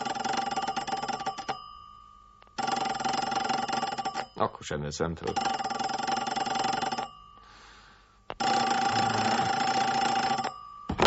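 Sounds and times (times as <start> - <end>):
telephone bell ringing: 0.0 - 4.5, 5.2 - 11.0
speech: 4.4 - 5.6.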